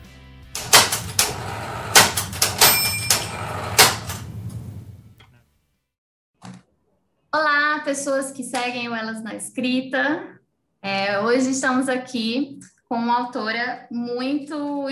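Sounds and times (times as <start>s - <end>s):
typewriter typing: 0.6s - 4.3s
speech: 7.4s - 14.9s.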